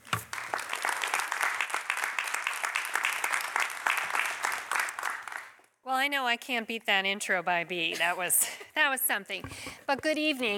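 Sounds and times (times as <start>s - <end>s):
audience applause as speakers come to the stage: 0.0s - 5.6s
speech: 5.9s - 10.5s.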